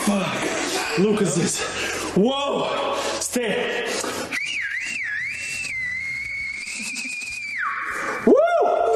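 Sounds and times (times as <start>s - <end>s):
speech: 0.1s - 4.4s
shrill reedy comedic whistle blown by mouth like a woodwind: 4.3s - 8.7s.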